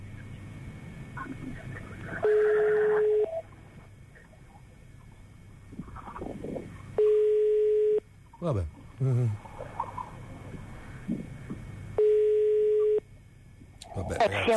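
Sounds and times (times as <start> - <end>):
telephone ringback tone during call transfer to an operator: 2.2 - 3.4, 7.0 - 8.0, 12.0 - 13.0
speech: 8.4 - 9.3.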